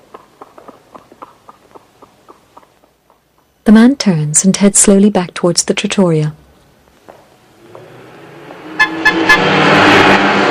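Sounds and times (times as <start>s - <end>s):
speech: 3.7s - 6.4s
convertible car driving past: 7.4s - 10.4s
car horn toots: 8.8s - 10.3s.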